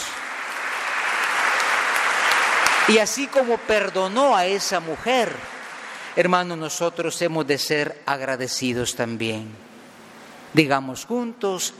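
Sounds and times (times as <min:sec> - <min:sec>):
church congregation applauding: 0:00.0 - 0:06.8
speech: 0:02.9 - 0:05.6, 0:06.2 - 0:09.7, 0:10.5 - 0:11.7.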